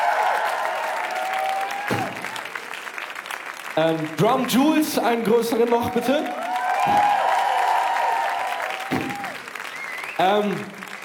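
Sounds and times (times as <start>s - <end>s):
voices and whoops: 0.0s - 2.4s, 5.8s - 10.1s
audience clapping for a DJ: 0.0s - 11.0s
speech: 1.9s - 2.1s, 3.8s - 7.1s, 10.2s - 10.8s.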